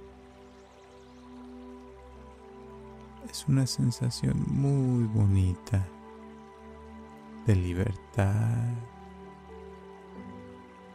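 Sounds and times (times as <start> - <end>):
flowing river water trickling: 0.0 - 10.9
speech: 3.2 - 6.0, 7.4 - 8.9.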